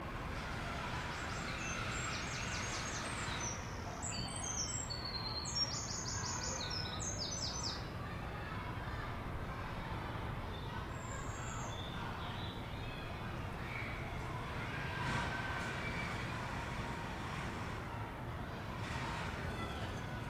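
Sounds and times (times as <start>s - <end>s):
children playing in a garden: 0.0s - 20.2s
birdsong in a garden: 1.0s - 7.9s, 10.4s - 16.1s.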